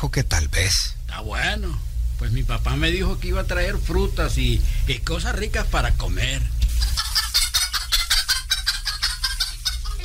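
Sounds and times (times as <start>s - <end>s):
speech: 0.0s - 7.0s
chicks chirping: 6.7s - 10.0s
hen clucking: 6.7s - 10.0s.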